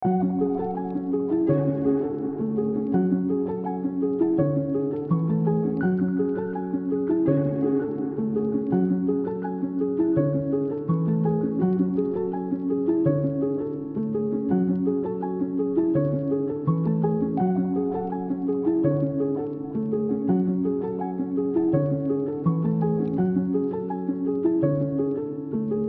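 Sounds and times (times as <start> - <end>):
F minor piano keys lead melody: 0.0 - 25.8.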